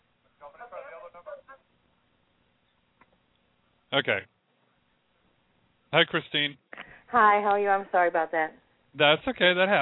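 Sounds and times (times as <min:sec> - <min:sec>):
thin tinny voice through a Skype call line with an echo: 0:00.4 - 0:01.7, 0:07.1 - 0:08.6
speech: 0:03.9 - 0:04.3, 0:05.9 - 0:09.7.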